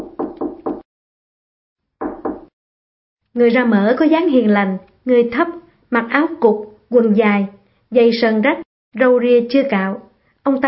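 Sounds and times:
firm knocks on a wooden door: 0.0 - 0.8, 2.0 - 2.5
speech: 3.4 - 10.6.

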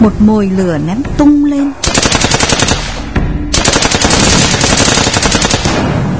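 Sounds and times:
speech: 0.0 - 2.0
automatic gunfire in a surprise attack on a village: 1.8 - 6.0.

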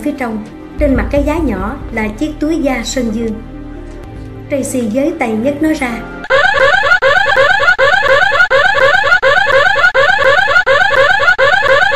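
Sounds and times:
speech: 0.0 - 3.5, 4.5 - 6.7
loud burglar alarm ringing with a harsh buzzing tone: 6.2 - 11.9.

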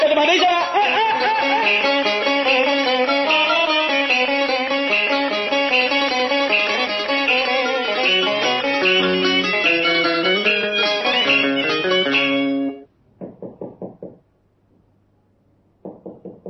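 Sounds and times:
musical passage: 0.0 - 12.9
speech: 0.2 - 0.8
knocking on a door: 13.2 - 14.2, 15.8 - 16.4.

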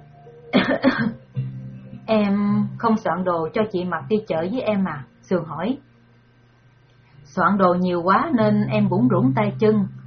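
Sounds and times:
woman coughing softly with a hand pressed to her chest: 0.6 - 1.2
speech: 2.1 - 5.9, 7.4 - 10.0.

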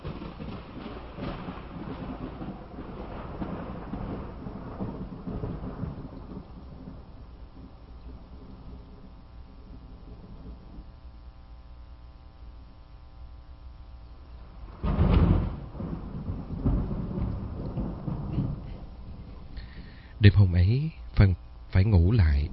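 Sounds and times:
sharp loud thunderclap: 0.0 - 11.0, 14.4 - 20.2
heavy rain pouring at a house: 0.0 - 11.1, 14.4 - 22.5
low rumbles of thunder: 0.0 - 22.5
speech: 20.2 - 22.5.

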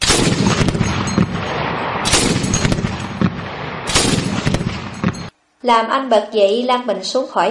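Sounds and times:
continuous gunfire of an artillery bombardment of an airfield at night: 0.0 - 5.3
explosive shots of an artillery bombardment: 0.0 - 5.3
speech: 5.7 - 7.4.

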